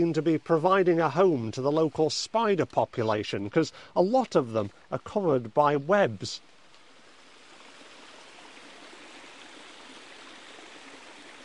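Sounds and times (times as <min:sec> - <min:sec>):
speech: 0:00.0 - 0:06.5
fast-flowing stream swollen by heavy rain below a waterfall at Hackfall: 0:06.9 - 0:11.4.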